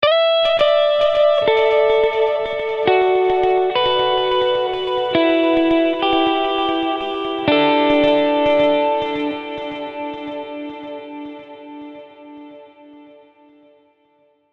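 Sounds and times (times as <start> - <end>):
guitar verse ornaments: 0.0 - 12.5.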